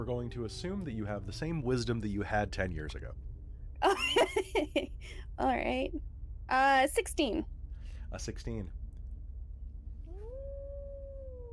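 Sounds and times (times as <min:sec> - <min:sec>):
long howl: 0:00.0 - 0:02.8, 0:10.1 - 0:11.5
speech: 0:00.0 - 0:07.5, 0:08.1 - 0:08.8
low rumbling background: 0:00.0 - 0:11.5
laughter: 0:03.8 - 0:05.0.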